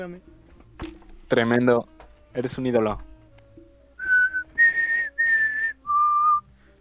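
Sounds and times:
speech: 0:00.0 - 0:03.1
person whistling a tune: 0:04.0 - 0:06.5.

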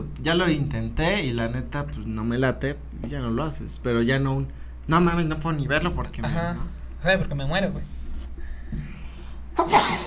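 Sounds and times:
faint low hum: 0:00.0 - 0:10.0
speech: 0:00.2 - 0:08.0
loud sharp sneeze: 0:09.6 - 0:10.0.

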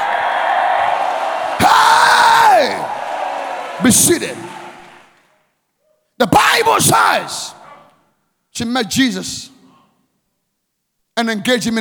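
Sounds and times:
large crowd roaring and screaming: 0:00.0 - 0:05.1
speech: 0:03.8 - 0:04.4, 0:06.7 - 0:07.6, 0:08.6 - 0:09.5, 0:11.2 - 0:11.7.

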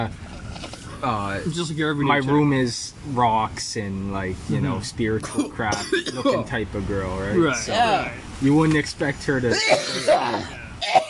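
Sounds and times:
speech: 0:00.0 - 0:00.2, 0:01.0 - 0:11.0
person coughing: 0:05.4 - 0:06.5, 0:09.5 - 0:11.0.

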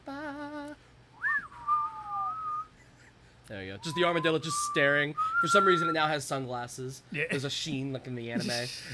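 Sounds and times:
person whistling a tune: 0:01.2 - 0:02.7, 0:03.8 - 0:06.0
speech: 0:03.5 - 0:08.9.

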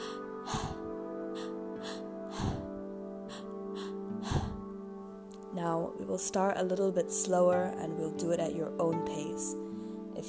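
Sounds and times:
breathing exercise with two quick inhalations and an exhale: 0:00.0 - 0:04.7
quiet sustained musical drone: 0:00.0 - 0:06.5
speech: 0:05.6 - 0:09.6.

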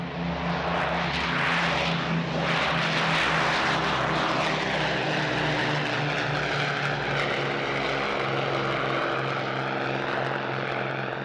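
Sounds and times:
propeller aircraft engines droning: 0:00.0 - 0:11.2.

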